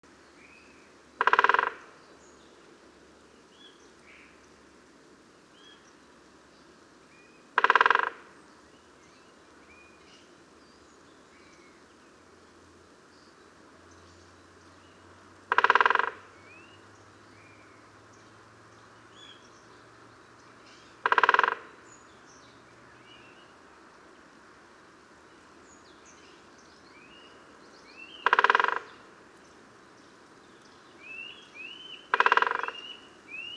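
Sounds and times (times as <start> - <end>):
Great Spotted Woodpecker Dendrocopos major: 0.4 - 2.6, 7.2 - 8.6, 15.5 - 18.3, 19.1 - 23.4, 25.7 - 33.5.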